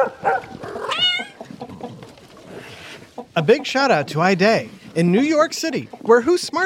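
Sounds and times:
cat meowing: 0:00.8 - 0:01.4
speech: 0:03.4 - 0:06.6.

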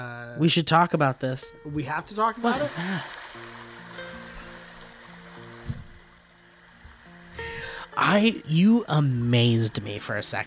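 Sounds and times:
speech: 0:00.4 - 0:03.2, 0:08.0 - 0:10.4
small stream water rushing and bubbling: 0:02.3 - 0:08.0.

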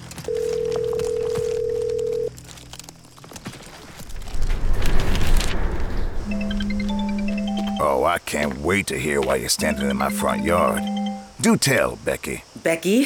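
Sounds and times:
rustling: 0:00.0 - 0:06.8
telephone line tone on an outgoing call: 0:00.3 - 0:02.3, 0:06.3 - 0:08.0, 0:09.6 - 0:11.4
rumbling noise: 0:03.8 - 0:07.8
speech: 0:08.0 - 0:13.0.

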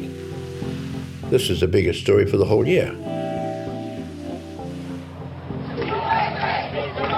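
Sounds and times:
speech: 0:01.3 - 0:03.2
large protest crowd chanting outside a funeral home in Worcester: 0:05.4 - 0:07.1
protest crowd shouting outdoors: 0:05.6 - 0:07.1.

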